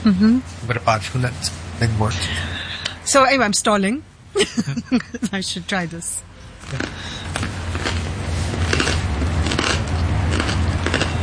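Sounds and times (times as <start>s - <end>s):
speech: 0.0s - 7.2s
low hum: 0.0s - 11.2s
biting into and chewing crunchy bread: 6.6s - 11.2s.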